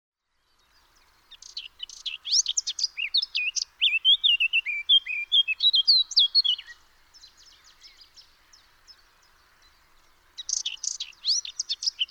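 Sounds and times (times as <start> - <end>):
Eurasian blackcap song: 0.6 - 8.3, 10.4 - 12.1.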